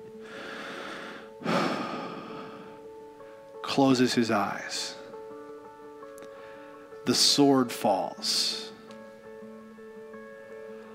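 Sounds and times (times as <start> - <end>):
deep breath: 0.2 - 3.5, 6.2 - 6.9
speech: 3.8 - 5.0, 7.1 - 8.7.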